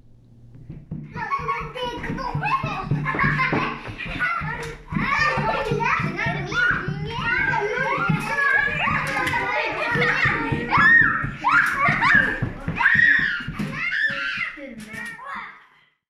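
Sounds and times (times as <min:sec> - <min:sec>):
faint low rumble: 0:00.0 - 0:01.0
crowd of children laughing while playing: 0:01.1 - 0:15.4.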